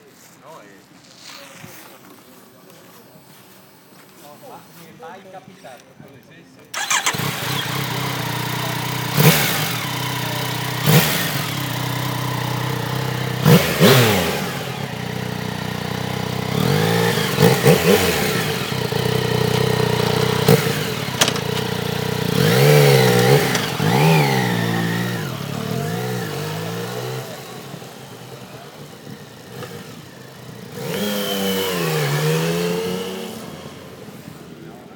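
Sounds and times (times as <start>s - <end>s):
Yamaha MT-09 Tracer motorcycle in action: 6.8s - 34.4s.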